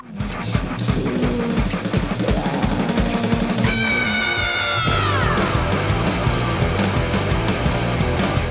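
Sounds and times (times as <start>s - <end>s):
loud pounding band music: 0.0s - 8.4s
band member's shrill eagle-like screech: 3.7s - 5.6s.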